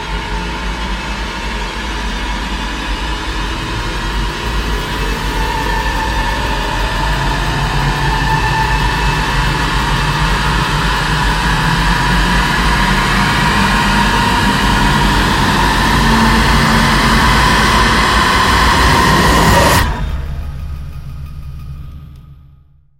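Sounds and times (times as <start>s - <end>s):
sweeping tones: 0.0s - 22.4s
massive distorted vortex roar: 0.0s - 22.8s
low rumble: 0.0s - 22.9s
sustained high tone: 4.3s - 21.3s.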